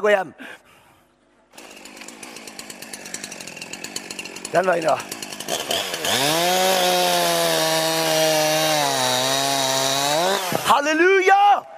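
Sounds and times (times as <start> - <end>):
speech: 0.0 - 0.7, 4.5 - 7.0, 10.7 - 11.7
dull power saw cutting: 1.5 - 10.9.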